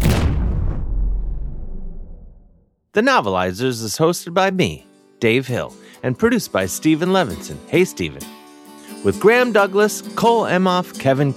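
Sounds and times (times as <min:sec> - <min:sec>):
loud explosion with low rumble: 0:00.0 - 0:02.6
speech: 0:03.0 - 0:11.3.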